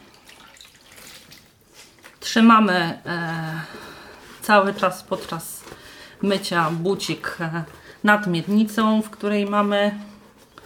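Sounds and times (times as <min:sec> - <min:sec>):
water dripping from a cleaning cloth wrung out by hand while washing a shoe: 0:00.0 - 0:02.2
speech: 0:02.3 - 0:03.9, 0:04.5 - 0:05.6, 0:06.2 - 0:10.1.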